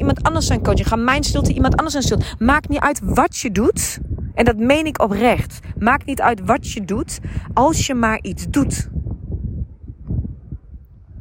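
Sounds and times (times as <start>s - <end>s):
wind blowing outdoors buffeting against the microphone: 0.0s - 11.1s
speech: 0.1s - 8.9s.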